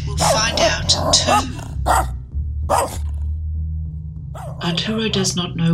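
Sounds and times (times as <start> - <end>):
dog barking: 0.1 - 3.1, 4.3 - 4.6
speech: 0.9 - 3.1, 4.6 - 5.7.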